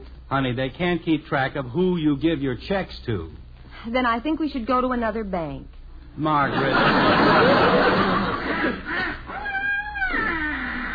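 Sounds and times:
speech: 0:00.3 - 0:08.8
laughter: 0:06.4 - 0:09.7
boy's voice imitating wild geese honking: 0:08.5 - 0:10.9.

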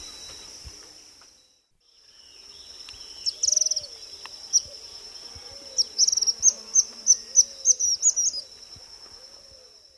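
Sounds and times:
high insect drone: 0:00.0 - 0:09.9
white-throated kingbird calling in the eastern lowlands of South America: 0:03.0 - 0:08.5.

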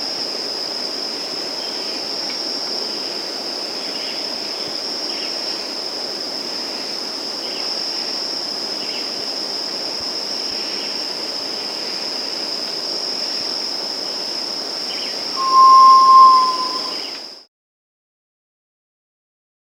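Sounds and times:
high insect drone: 0:00.0 - 0:17.2
Black tinamou Tinamus osgoodi whistling song in South America: 0:15.4 - 0:17.1.

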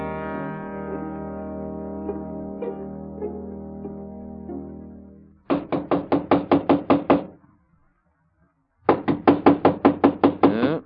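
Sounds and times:
rapid loud knocking on a door: 0:05.5 - 0:07.3, 0:08.9 - 0:10.7.

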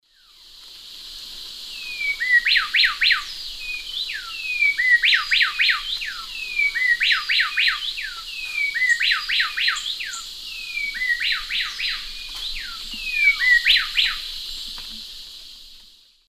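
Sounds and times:
Pheugopedius coraya duet in the Eastern Lowlands of South America: 0:02.0 - 0:14.3.

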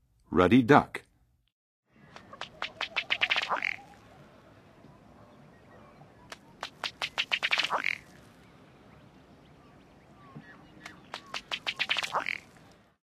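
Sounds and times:
Ruddy Duck in Western USA North America: 0:02.2 - 0:04.0, 0:06.7 - 0:08.1, 0:10.4 - 0:12.5.

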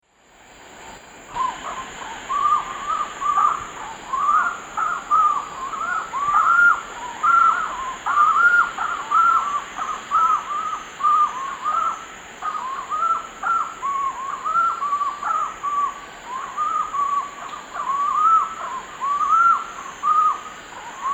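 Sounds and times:
Bucco capensis duet in the Eastern Lowlands of South America: 0:01.3 - 0:21.1.

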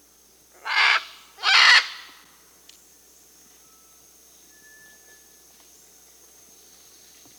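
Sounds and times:
scarlet macaw Ara macao screeching in the Amazon, Peru: 0:00.6 - 0:02.1.

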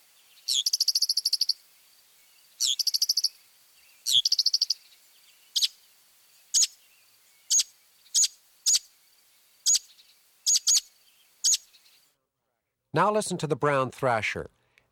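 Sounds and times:
Northern mockingbird song with mimicry: 0:00.1 - 0:05.8, 0:06.4 - 0:12.0
speech: 0:13.0 - 0:14.9.

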